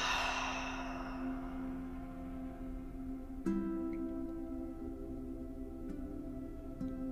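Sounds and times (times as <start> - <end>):
deep breathy exhale through the mouth: 0.0 - 2.3
steady low drone humming: 0.0 - 6.0.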